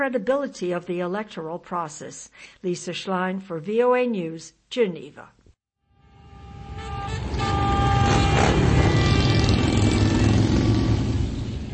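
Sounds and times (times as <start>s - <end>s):
speech: 0.0s - 5.4s
many motorcycles roaring past: 6.6s - 11.7s.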